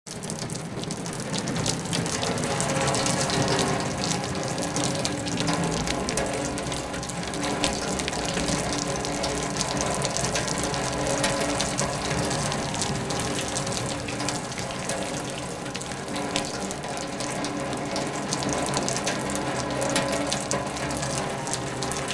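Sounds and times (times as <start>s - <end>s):
steady heavy rain: 0.1s - 22.1s.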